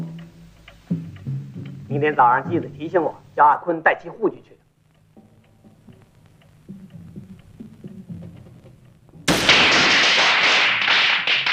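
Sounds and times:
soft low thumps and taps: 0.0s - 1.9s, 4.9s - 9.3s
speech: 1.9s - 4.6s
string of firecrackers going off: 9.2s - 11.5s.

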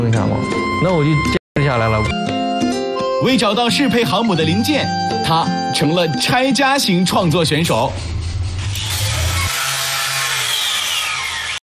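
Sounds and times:
speech: 0.1s - 2.3s, 3.2s - 8.8s
power tool grinding: 8.2s - 11.6s.

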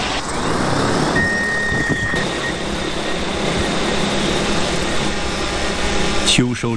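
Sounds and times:
agricultural drone taking off and flying: 0.0s - 6.5s
high-pitched electronic tone: 0.8s - 5.1s.

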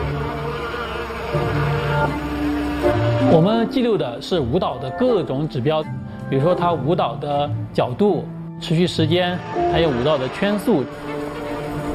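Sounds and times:
honeybees buzzing at the hive: 0.0s - 3.5s, 9.4s - 11.9s
speech: 1.3s - 11.4s.

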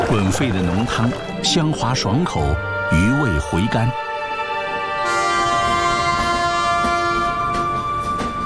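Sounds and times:
speech: 0.1s - 4.1s
passenger train arriving at a station after crossing mountains: 4.3s - 8.4s.

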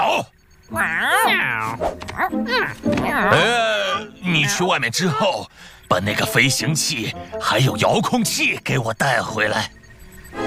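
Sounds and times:
speech: 0.2s - 10.4s
cat meowing with long wavering whines: 0.7s - 5.2s.

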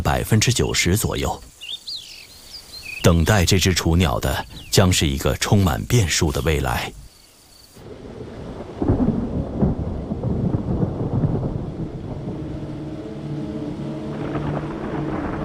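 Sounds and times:
steady wash of rain in the mountains: 0.0s - 15.4s
speech: 0.1s - 1.6s, 3.1s - 7.0s
deep rolling thunder in the mountains: 7.8s - 15.4s.

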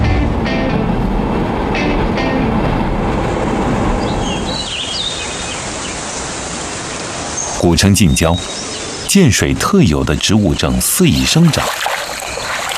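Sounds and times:
vintage small train passing slowly: 0.0s - 7.4s
speech: 7.6s - 12.0s.

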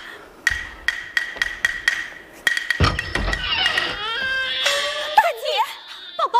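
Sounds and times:
sharp evenly spaced knocks: 0.5s - 4.0s
baby crying loudly with high-pitched wails: 3.3s - 6.3s.

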